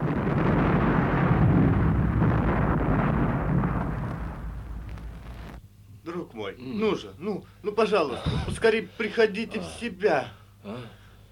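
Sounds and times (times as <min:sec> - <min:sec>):
explosion of a gasoline-soaked sack set off by a flaming torch: 0:00.0 - 0:05.6
speech: 0:06.4 - 0:11.0.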